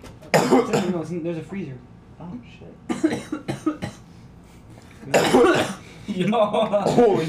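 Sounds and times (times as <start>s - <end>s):
group of people coughing in sharp bursts: 0.3s - 1.0s, 2.9s - 4.1s, 5.0s - 6.0s, 6.8s - 7.2s
speech: 0.5s - 3.9s, 5.0s - 7.2s.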